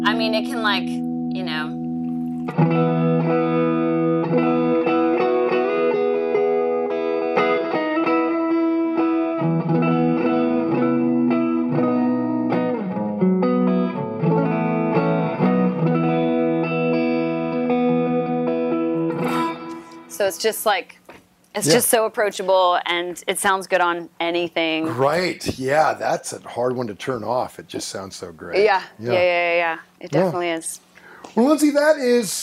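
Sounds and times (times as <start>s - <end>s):
speech: 0.0s - 1.8s, 2.4s - 4.4s, 20.2s - 21.0s, 21.6s - 32.4s
electric guitar through a warm lush reverb pedal: 0.0s - 20.8s.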